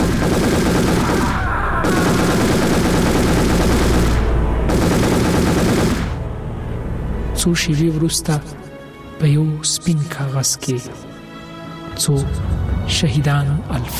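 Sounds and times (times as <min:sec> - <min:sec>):
heavy gunfire at a small military post: 0:00.0 - 0:06.2
speech: 0:07.4 - 0:08.6, 0:09.2 - 0:11.1, 0:12.0 - 0:13.9.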